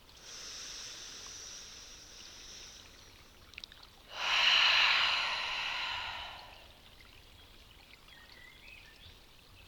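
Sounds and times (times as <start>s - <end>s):
louder airy exhale through the mouth: 0.2s - 3.0s, 4.1s - 6.8s
slow soft breath in through the nose: 0.2s - 3.1s, 4.1s - 6.7s.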